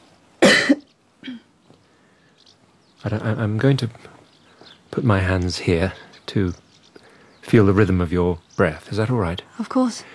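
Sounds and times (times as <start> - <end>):
person coughing: 0.4 - 1.5
speech: 3.0 - 4.2, 4.9 - 6.6, 7.5 - 10.1.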